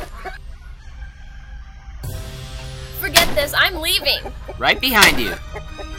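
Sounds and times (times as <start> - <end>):
chickens crowing: 0.0 - 2.4
flock of hundreds of chickens clucking: 0.0 - 5.9
steady noisy barnyard din: 0.0 - 5.9
speech: 3.4 - 5.6.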